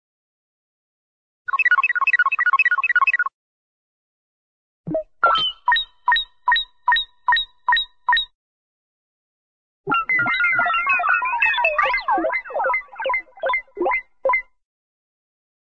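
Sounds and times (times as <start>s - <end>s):
sci fi cartoon robot beeps: 1.5s - 3.3s, 4.9s - 8.3s, 9.9s - 14.5s.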